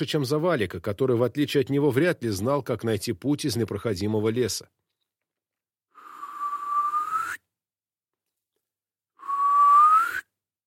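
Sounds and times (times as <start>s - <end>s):
speech: 0.0s - 4.8s
man whistling in a dark dense spruce forest: 5.9s - 7.5s, 9.2s - 10.4s.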